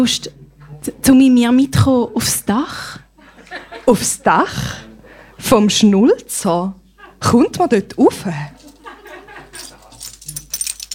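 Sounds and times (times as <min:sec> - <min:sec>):
speech: 0:00.0 - 0:08.6
laughter: 0:03.2 - 0:04.6, 0:06.9 - 0:07.5, 0:08.5 - 0:10.2
bunch of keys jangling: 0:08.6 - 0:10.9.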